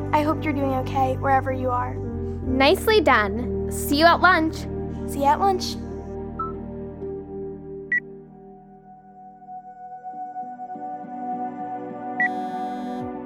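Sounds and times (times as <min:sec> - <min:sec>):
speech: 0:00.1 - 0:05.8
phone ringing with a steady tonal ringtone: 0:12.2 - 0:13.1.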